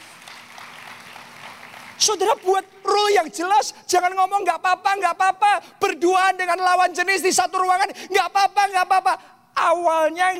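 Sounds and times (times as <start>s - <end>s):
audience applause: 0.0s - 2.0s
speech: 2.0s - 10.3s.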